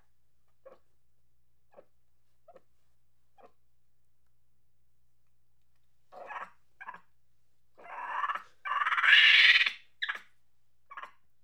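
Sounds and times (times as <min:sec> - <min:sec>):
angry monkey chattering and screeching: 0:07.8 - 0:10.2.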